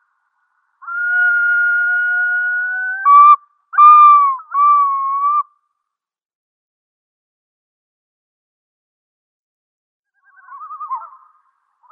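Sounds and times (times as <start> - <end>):
Yellow-billed loon giving wailing and yodel calls: 0.9 - 5.4.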